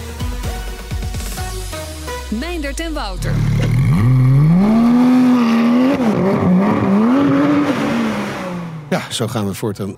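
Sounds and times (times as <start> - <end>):
speech: 2.3 - 4.1, 8.9 - 9.9
new Porsche 911 GT3 sports car engine revving outside the door: 3.3 - 9.0.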